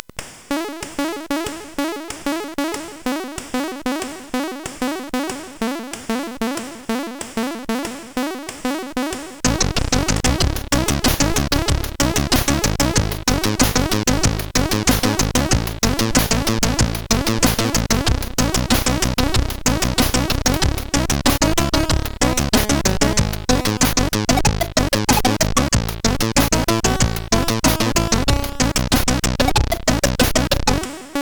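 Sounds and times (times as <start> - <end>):
chiptune song on a SID CSG8580R5 chip: 0.5 - 31.2.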